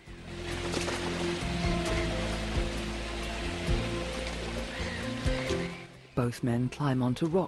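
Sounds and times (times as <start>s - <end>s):
waterfall rushing in a jungle: 0.2s - 6.0s
speech: 6.2s - 7.4s.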